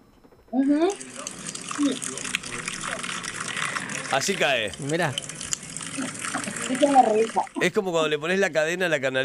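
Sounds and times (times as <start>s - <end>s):
speech: 0.5s - 1.2s, 1.8s - 2.4s, 4.1s - 5.3s, 6.0s - 9.2s
cider pouring from a bottle through a cork spout: 0.9s - 7.6s.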